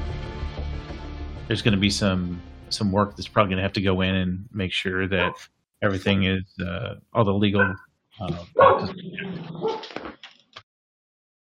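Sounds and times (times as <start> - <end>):
speech: 1.5 - 10.1
dog barking and yipping: 5.2 - 5.4, 7.6 - 7.8, 8.5 - 10.0.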